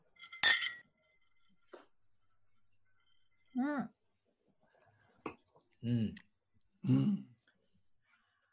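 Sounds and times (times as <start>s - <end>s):
glasses clinking in a toast: 0.1s - 1.2s
speech: 3.6s - 4.0s, 5.8s - 7.3s.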